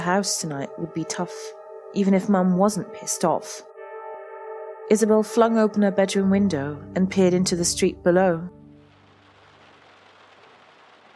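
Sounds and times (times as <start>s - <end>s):
speech: 0.0s - 3.7s, 4.9s - 8.6s
heavy rain pouring down: 8.7s - 11.1s.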